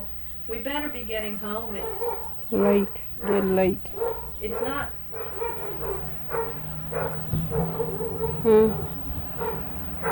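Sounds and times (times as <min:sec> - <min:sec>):
speech: 0:00.5 - 0:05.0
dog barking: 0:01.7 - 0:02.4, 0:03.2 - 0:08.5, 0:09.3 - 0:10.1.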